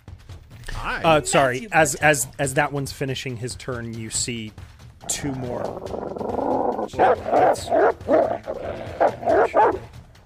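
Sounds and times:
speech: 0.8s - 9.9s
wolves barking and yipping: 5.5s - 10.0s.

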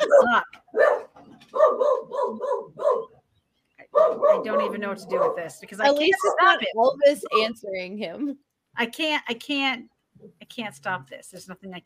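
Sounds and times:
dogs barking back and forth: 0.0s - 6.4s
speech: 0.2s - 0.9s, 4.3s - 9.9s, 10.5s - 11.8s.

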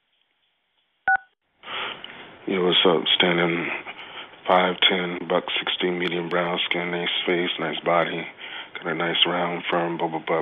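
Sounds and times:
telephone keypad dual-pitch beeps as key one is pressed: 1.1s - 1.3s
speech: 2.5s - 3.8s, 4.5s - 10.4s.

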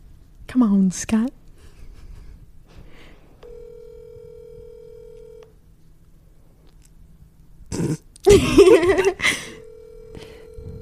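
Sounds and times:
speech: 0.5s - 1.4s, 8.3s - 9.4s
phone call ringing with a low electronic tone: 3.4s - 5.5s, 9.4s - 10.7s.

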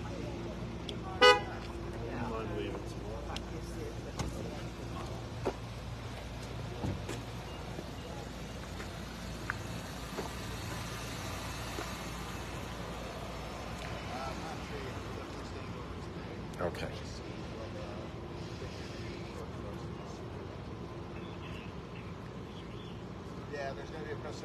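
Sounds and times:
rumble of passing traffic on a road: 0.0s - 24.4s
car horn toot: 1.2s - 1.6s.

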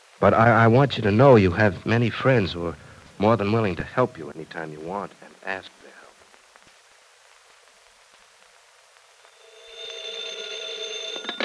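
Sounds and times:
speech: 0.2s - 6.0s
telephone ringing with electronic tone: 9.4s - 11.4s.

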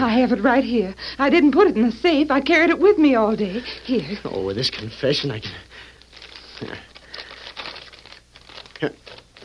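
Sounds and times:
speech: 0.0s - 5.7s, 6.6s - 6.9s, 8.8s - 9.2s
paper envelope torn open and crinkled: 6.0s - 9.4s.

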